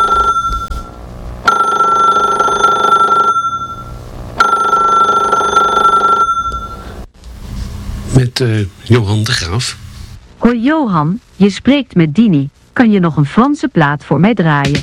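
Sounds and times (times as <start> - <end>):
telephone ringing with a bright electronic tone: 0.0 - 0.9, 1.5 - 7.0
speech: 8.4 - 9.8, 10.4 - 14.8.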